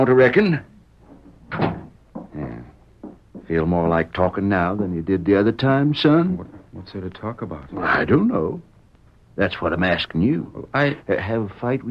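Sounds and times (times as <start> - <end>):
speech: 0.0 - 0.7, 1.5 - 1.8, 3.5 - 8.7, 9.4 - 11.8
door creaking as it settles into its frame: 1.0 - 2.4
door swinging shut: 1.4 - 2.0.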